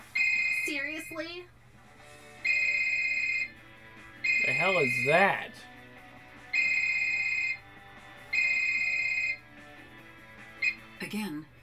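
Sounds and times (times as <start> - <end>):
telephone ringing in electronic bursts: 0.2 - 1.1, 2.4 - 3.6, 4.2 - 5.4, 6.5 - 7.7, 8.3 - 9.5
speech: 0.7 - 1.6, 4.4 - 5.7, 11.0 - 11.6.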